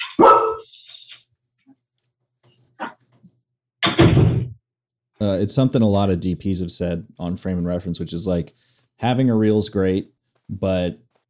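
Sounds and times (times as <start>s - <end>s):
puppies barking in short sharp yips: 0.0s - 0.7s
speech: 5.2s - 11.0s.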